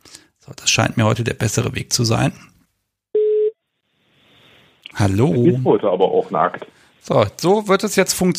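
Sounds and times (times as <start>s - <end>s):
speech: 0.5s - 2.5s, 5.0s - 8.3s
telephone ringing tone while placing a call: 3.2s - 3.6s.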